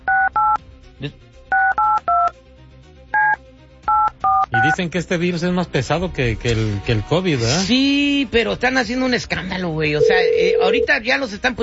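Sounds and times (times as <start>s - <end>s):
touch-tone telephone keypad dialing as a call is redialed: 0.0s - 0.6s, 1.5s - 2.3s, 3.2s - 4.8s, 10.0s - 10.9s
speech: 1.0s - 1.4s, 4.6s - 11.6s.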